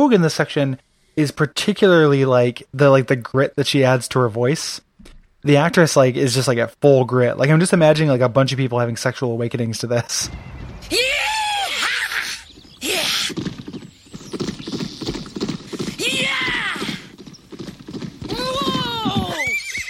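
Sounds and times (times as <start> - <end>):
speech: 0.0 - 4.8, 5.4 - 11.0
horses whinnying: 11.7 - 19.8.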